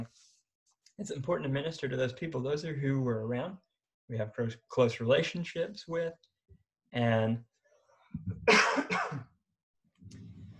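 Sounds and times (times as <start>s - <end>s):
speech: 1.0s - 6.3s, 6.9s - 7.5s, 8.1s - 9.3s
harsh breathy coughs: 8.4s - 9.3s.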